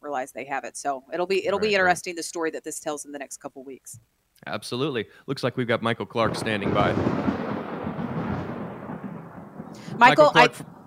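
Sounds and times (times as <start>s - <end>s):
speech: 0.2s - 7.4s, 10.0s - 10.7s
thunder rumbling: 5.6s - 10.8s.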